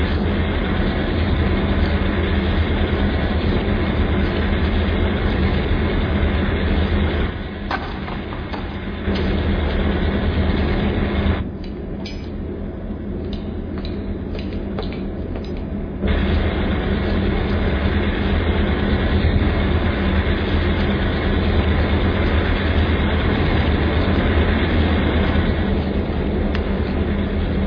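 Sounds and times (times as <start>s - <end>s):
passenger train pulling out of a station: 0.0s - 27.6s.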